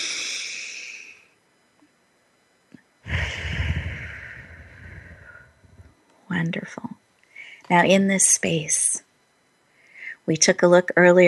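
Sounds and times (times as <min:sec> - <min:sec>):
deep breath: 0:00.0 - 0:01.2, 0:03.1 - 0:05.6, 0:07.3 - 0:07.7, 0:09.7 - 0:10.2
speech: 0:06.4 - 0:07.0, 0:07.7 - 0:09.0, 0:10.3 - 0:11.2.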